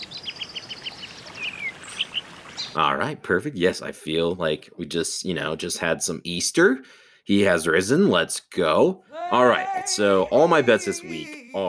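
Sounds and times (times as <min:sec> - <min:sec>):
spring birds chirping and twittering: 0:00.0 - 0:02.8
speech: 0:02.8 - 0:11.6.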